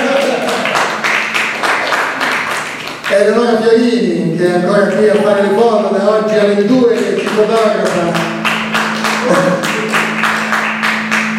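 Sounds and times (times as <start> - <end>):
crowd applauding loudly: 0.0 - 3.4, 6.7 - 11.3
speech: 3.2 - 8.2.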